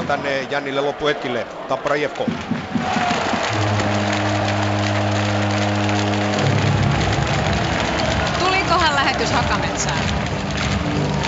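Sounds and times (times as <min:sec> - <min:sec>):
packed ice hockey arena crowd din: 0:00.0 - 0:11.2
speech: 0:00.1 - 0:03.9, 0:09.1 - 0:10.3
sustained droning horn-like tone: 0:03.3 - 0:08.8.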